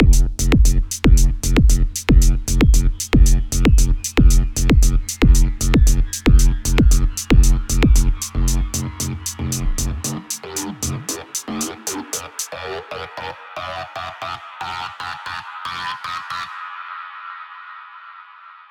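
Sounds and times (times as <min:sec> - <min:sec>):
square wave bass synth: 0:00.0 - 0:12.4.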